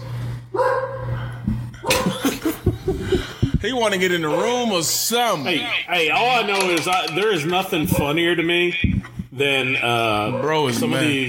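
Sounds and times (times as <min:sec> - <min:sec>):
dog barking sharply and excitedly: 0:00.5 - 0:01.2
laughter: 0:01.9 - 0:04.0
speech: 0:03.6 - 0:11.2.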